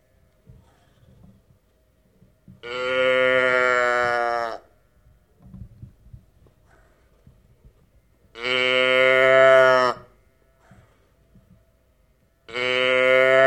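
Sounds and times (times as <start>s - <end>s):
speech: 2.6s - 2.9s
sheep bleating: 2.6s - 4.6s, 8.4s - 10.1s, 12.5s - 13.4s.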